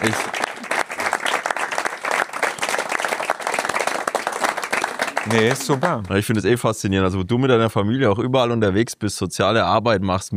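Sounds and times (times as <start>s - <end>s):
applause from a group: 0.0s - 6.4s
speech: 5.3s - 10.3s.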